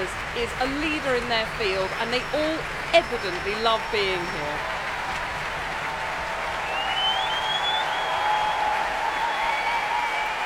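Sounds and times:
large concert hall audience applause: 0.1s - 10.4s
speech: 0.4s - 4.8s
faint whistles from concert hall audience: 6.6s - 10.4s.

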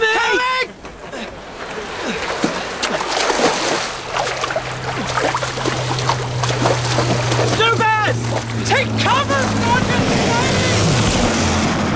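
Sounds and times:
choppy water splashing and sloshing under a small liberty boat: 0.2s - 11.9s
small liberty boat low motor hum: 3.9s - 11.9s.

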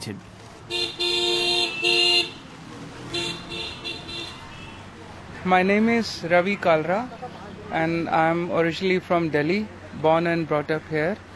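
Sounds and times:
speech: 0.0s - 1.3s, 5.4s - 11.3s
rumble of busy road traffic: 0.0s - 11.3s
car horns honking in city traffic: 0.7s - 4.9s.

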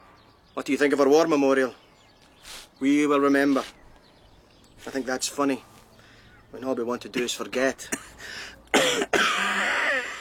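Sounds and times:
speech: 0.6s - 1.8s, 2.8s - 3.8s, 4.8s - 5.7s, 6.5s - 9.0s
harsh cough from a man gassed in the war: 7.1s - 10.1s.

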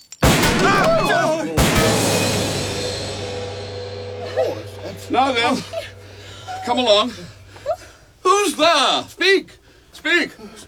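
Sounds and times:
voices shouting over the shots: 0.2s - 2.9s
gunfire burst of sharp cracks and booms: 0.2s - 4.3s
speech: 5.1s - 5.9s, 6.6s - 7.4s, 8.4s - 10.6s.

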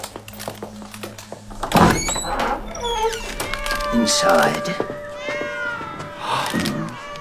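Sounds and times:
hundreds of white cats meowing in a cat room: 1.5s - 7.2s
speech: 4.0s - 5.0s.

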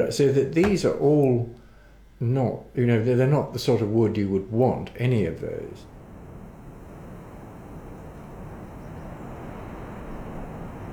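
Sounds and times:
speech: 0.0s - 1.6s, 2.2s - 5.9s
strong wind buffeting the microphone: 5.9s - 10.9s.

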